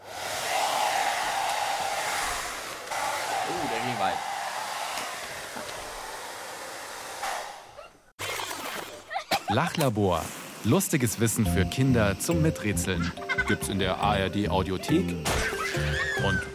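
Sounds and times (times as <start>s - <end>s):
hair dryer blowing: 0.0s - 7.8s
speech: 3.5s - 4.3s, 9.5s - 16.5s.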